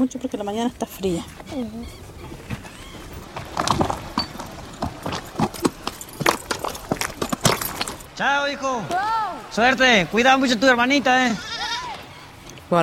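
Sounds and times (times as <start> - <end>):
speech: 0.0 - 2.5, 8.2 - 11.5, 12.7 - 12.8
ridden horse hooves clip-clopping: 0.1 - 8.2
faint creaking and rattling: 0.5 - 8.1.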